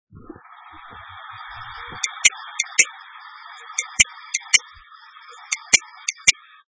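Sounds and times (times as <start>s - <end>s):
2.5-inch laptop hard disk with corrupted head clicking: 2.0s - 2.9s, 3.8s - 4.6s, 5.5s - 6.3s.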